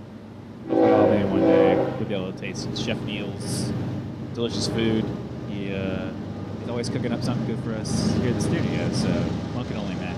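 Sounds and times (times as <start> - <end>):
loud train horn blaring: 0.6 - 2.1
speech: 2.1 - 10.1.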